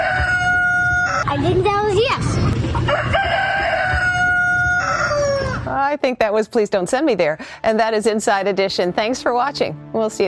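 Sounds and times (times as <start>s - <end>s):
rooster crowing: 0.0s - 1.4s, 2.8s - 5.7s
speech: 1.3s - 3.4s, 5.7s - 10.2s.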